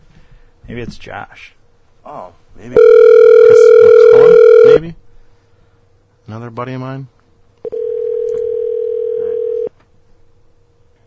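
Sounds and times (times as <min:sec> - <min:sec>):
speech: 0:00.7 - 0:05.0, 0:06.3 - 0:07.2
electronic ringing tone of a phone call being placed: 0:02.8 - 0:04.8, 0:07.7 - 0:09.7.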